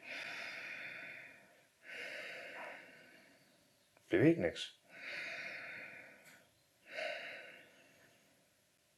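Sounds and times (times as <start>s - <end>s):
deep demonstration breath in: 0.0s - 3.7s, 4.9s - 8.5s
speech: 4.1s - 4.8s.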